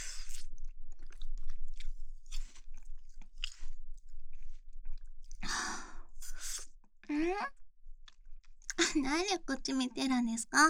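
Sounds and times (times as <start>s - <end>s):
crunching and wet chewing of a cold treat that melts: 0.0s - 5.5s, 8.0s - 8.8s
speech: 9.0s - 10.6s.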